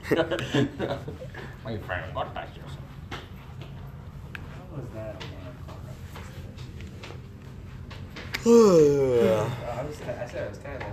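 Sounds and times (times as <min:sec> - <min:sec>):
speech: 0:00.1 - 0:02.8, 0:04.8 - 0:05.4, 0:08.4 - 0:10.9
long voiced yawn: 0:08.4 - 0:09.6
breathy murmuring: 0:08.4 - 0:09.8.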